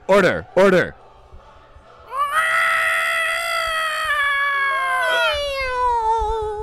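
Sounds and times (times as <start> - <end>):
speech: 0.1 - 1.0
person imitating a cat meow: 2.1 - 6.6.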